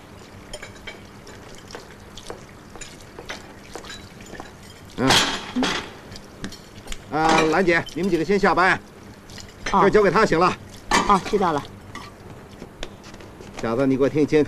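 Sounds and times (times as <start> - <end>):
running water at a sink: 0.0 - 12.9
dishes clinking and clattering at a sink: 0.5 - 8.4, 9.4 - 10.0, 10.9 - 12.2
speech: 5.0 - 5.3, 7.2 - 8.9, 9.7 - 11.7, 13.6 - 14.4.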